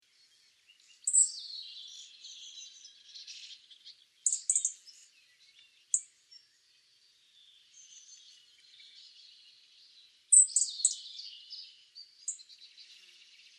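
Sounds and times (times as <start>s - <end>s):
European robin Erithacus rubecula singing: 0.1s - 13.5s.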